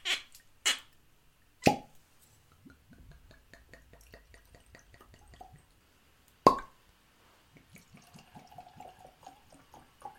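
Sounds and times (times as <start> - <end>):
whiskey pouring into glasses: 7.8 - 10.1.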